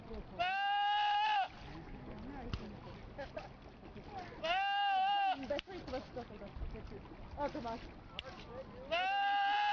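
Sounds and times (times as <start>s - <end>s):
goat yelling like a man shouting: 0.4s - 1.5s, 4.4s - 5.4s, 8.9s - 9.7s.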